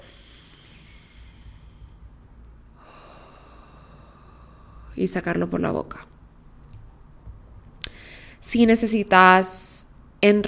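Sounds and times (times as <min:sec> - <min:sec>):
long deep breath in through the nose for a calming breathing exercise: 0:00.0 - 0:02.2, 0:02.8 - 0:05.0
speech: 0:05.0 - 0:06.1, 0:08.5 - 0:10.4.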